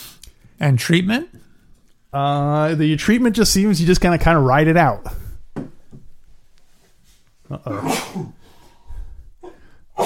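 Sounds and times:
speech: 0.6 - 1.4, 2.1 - 5.2, 7.5 - 8.4
person sneezing: 7.5 - 8.6, 9.4 - 10.0
breathy inhaling gasps before a sneeze: 8.3 - 10.0.

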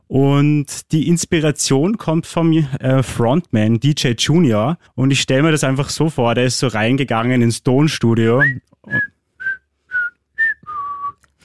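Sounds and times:
speech: 0.1 - 9.1
person whistling a pop song melody: 8.4 - 11.3.

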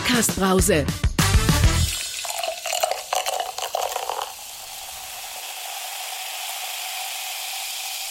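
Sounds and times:
speech: 0.1 - 1.1
liquid glugging: 1.9 - 6.2.

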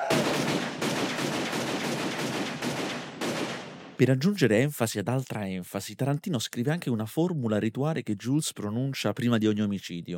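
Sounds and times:
rapid gunfire in a film shootout scene: 0.0 - 4.0
speech: 4.0 - 10.1.

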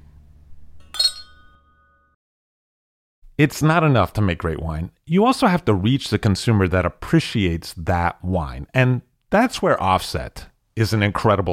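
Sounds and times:
glasses clinking in a toast: 0.8 - 2.1
speech: 3.4 - 11.5.

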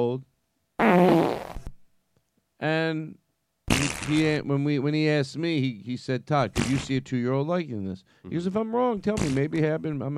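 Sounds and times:
speech: 0.0 - 0.3, 0.9 - 1.6, 2.6 - 10.1
loud buzzy fart: 0.8 - 1.8, 3.7 - 4.3.

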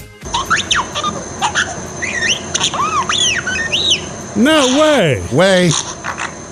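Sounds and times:
parakeet chirping and whistling, imitating robot beeps: 0.3 - 4.8
speech: 4.4 - 6.1.

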